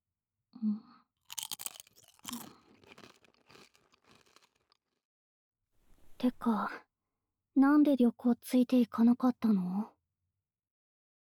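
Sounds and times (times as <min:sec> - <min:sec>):
speech: 0:00.6 - 0:00.9, 0:06.2 - 0:06.9, 0:07.6 - 0:09.9
person chewing a snack: 0:01.2 - 0:05.0.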